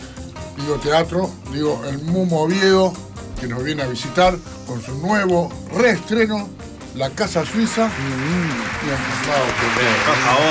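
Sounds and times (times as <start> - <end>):
speech: 0.6 - 10.4
sustained crowd applause: 7.3 - 10.4.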